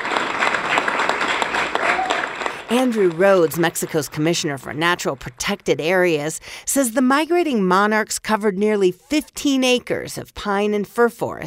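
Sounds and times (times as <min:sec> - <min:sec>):
applause from environmentalists in a packed conference room: 0:00.0 - 0:05.4
speech: 0:02.7 - 0:11.4.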